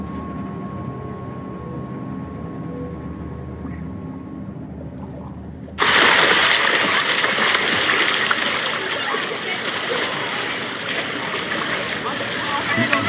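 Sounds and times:
water sloshing and churning in a pool: 4.8s - 13.0s
splash of person breaking the surface of a pool: 5.8s - 13.0s.

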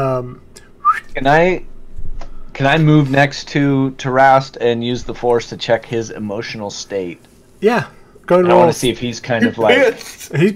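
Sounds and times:
speech: 0.0s - 0.6s, 1.2s - 1.7s, 2.6s - 10.5s
man whistling upward: 0.8s - 1.1s.

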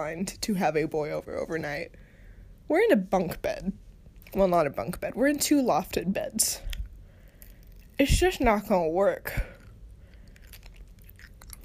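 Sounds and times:
speech: 0.0s - 2.0s, 2.7s - 6.7s, 8.0s - 9.5s
steady low hum: 0.0s - 11.6s
person chewing Skittles candy: 6.7s - 8.0s, 9.5s - 11.6s.

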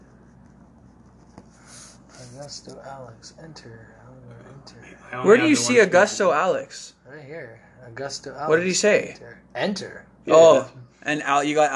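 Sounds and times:
pen scratching across paper: 0.0s - 2.4s
speech: 2.4s - 11.7s.

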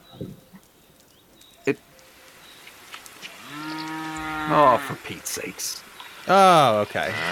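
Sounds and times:
speech: 1.6s - 1.9s, 4.5s - 7.2s
cow mooing: 3.4s - 5.0s, 7.0s - 7.2s.

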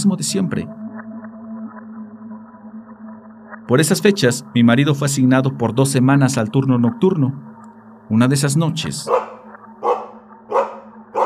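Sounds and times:
speech: 0.0s - 0.8s, 3.7s - 7.5s, 8.1s - 9.4s
dog barking loudly at night: 9.1s - 11.2s.

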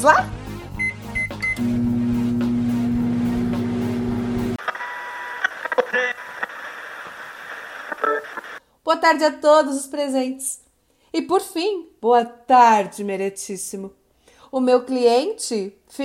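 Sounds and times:
speech: 0.0s - 0.4s, 1.6s - 1.9s, 9.0s - 16.0s
quick electronic beeps of a microwave oven: 0.8s - 1.6s
microwave oven humming: 0.8s - 4.6s.

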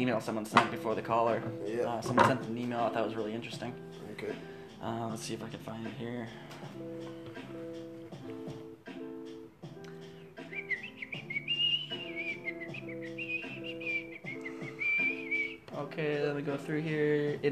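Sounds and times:
speech: 0.0s - 8.4s, 15.8s - 17.5s
steady rhythmic chords of music: 0.0s - 17.5s
person whistling a high wavering melody: 10.2s - 15.8s.

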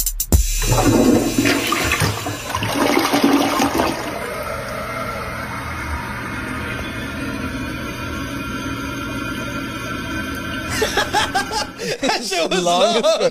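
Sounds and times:
toilet flushing: 0.4s - 11.9s
people laughing: 10.7s - 13.3s.

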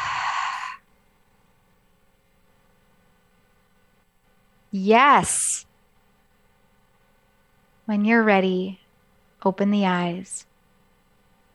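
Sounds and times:
deep breath exhaled through the open mouth: 0.0s - 0.8s
speech: 4.7s - 5.7s, 7.9s - 8.8s, 9.4s - 10.5s.

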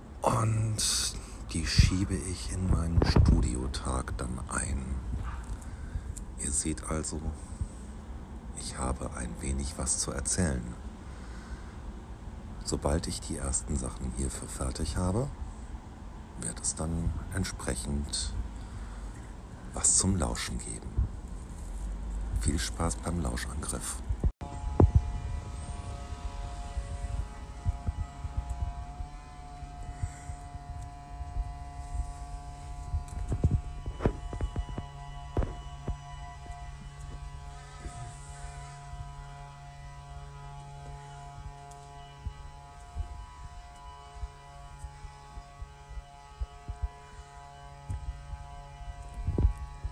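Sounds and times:
distant leaf blower droning with low motor whine: 0.0s - 49.8s
speech: 0.4s - 5.4s, 6.4s - 7.5s, 8.6s - 10.8s, 12.7s - 15.4s, 16.4s - 18.4s, 19.7s - 21.0s, 22.4s - 24.0s.

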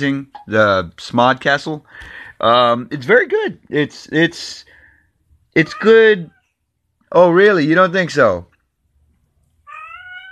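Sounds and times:
speech: 0.0s - 4.7s, 5.6s - 6.4s, 7.1s - 8.5s
faint low hum: 0.0s - 10.3s
cat meowing: 9.6s - 10.3s.

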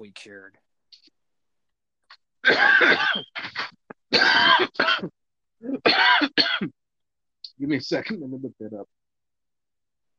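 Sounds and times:
speech: 0.0s - 1.2s, 2.4s - 6.8s, 7.6s - 9.0s
person coughing harsh wet coughs: 2.4s - 6.8s.

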